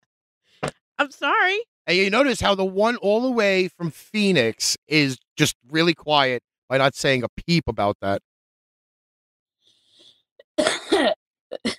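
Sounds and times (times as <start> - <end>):
speech: 1.1 - 8.3, 10.6 - 11.7
harsh raspy cough: 10.6 - 11.7.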